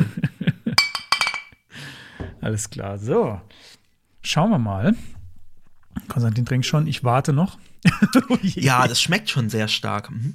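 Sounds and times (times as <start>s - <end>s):
glasses clinking in a toast: 0.8s - 1.6s
speech: 2.4s - 5.2s, 6.1s - 10.3s
laughter: 7.8s - 9.1s.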